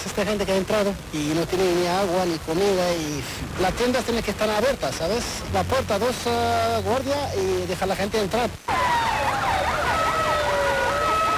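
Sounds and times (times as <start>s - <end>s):
speech: 0.1s - 9.0s
police sirens wailing through a city street in central Ceuta: 8.7s - 11.3s.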